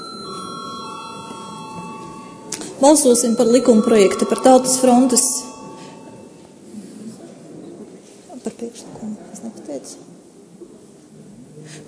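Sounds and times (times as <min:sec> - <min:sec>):
bell ringing in a parliament chamber to call a vote: 0:00.0 - 0:06.5
speech: 0:02.8 - 0:05.5.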